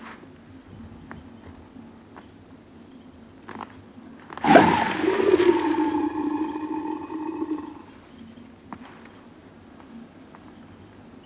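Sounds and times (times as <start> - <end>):
short harsh burst: 4.4 - 7.8
crocodile growl: 4.4 - 7.9.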